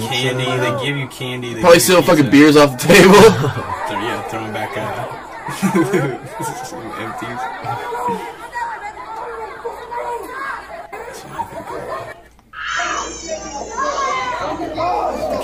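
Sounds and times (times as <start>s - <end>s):
speech: 0.1s - 8.4s
laughter: 1.7s - 15.4s
crowd of children playing noisily with shrieks and chatter: 3.1s - 15.4s
sustained high-pitched child's cry: 12.6s - 14.8s.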